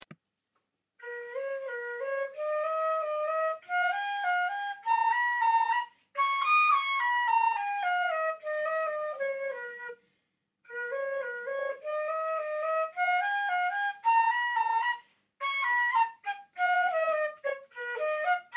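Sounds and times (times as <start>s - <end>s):
flute solo: 1.0s - 10.0s, 10.7s - 18.5s.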